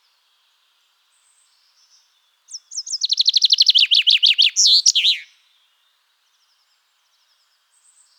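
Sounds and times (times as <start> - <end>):
common chaffinch Fringilla coelebs song: 2.5 - 5.3.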